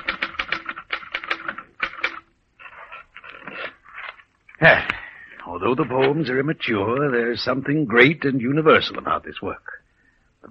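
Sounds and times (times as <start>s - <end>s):
mechanical typewriter keystrokes: 0.0s - 2.2s
speech: 4.6s - 9.7s.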